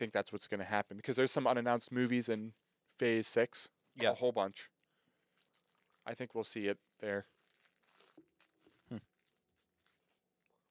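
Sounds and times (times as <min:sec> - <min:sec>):
speech: 0:00.0 - 0:04.8, 0:06.1 - 0:07.3, 0:08.9 - 0:09.1
plastic candy wrapper crinkling: 0:00.9 - 0:03.4, 0:04.7 - 0:10.6
person munching candy: 0:04.7 - 0:06.2, 0:06.8 - 0:10.6.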